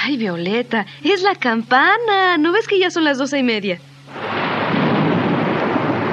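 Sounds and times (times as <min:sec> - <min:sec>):
speech: 0:00.0 - 0:03.9
rain-like hissing wash: 0:00.0 - 0:06.1
thunder rumbling during a storm: 0:04.1 - 0:06.1.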